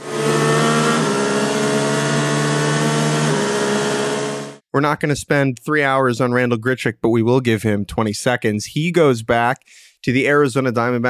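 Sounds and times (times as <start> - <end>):
car engine revving in a turbo-mode sound effect: 0.0 - 4.6
speech: 4.8 - 11.0.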